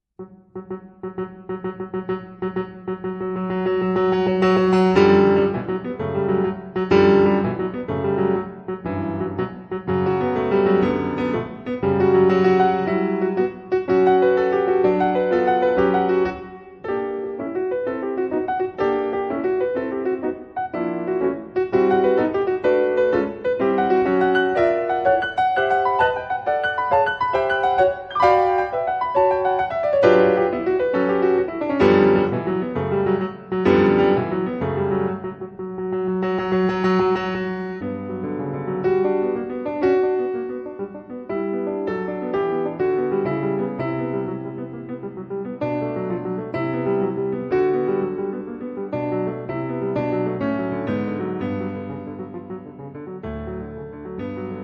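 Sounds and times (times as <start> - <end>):
sonatina finale played on piano by female concert pianist: 0.0 - 54.6.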